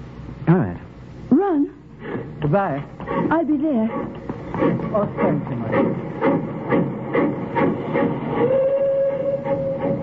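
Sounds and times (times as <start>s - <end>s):
continuous rumbling hiss: 0.0s - 10.0s
speech: 2.5s - 7.2s
train chugging as it pulls out of a station: 3.1s - 10.0s
long sustained train whistle: 6.3s - 10.0s.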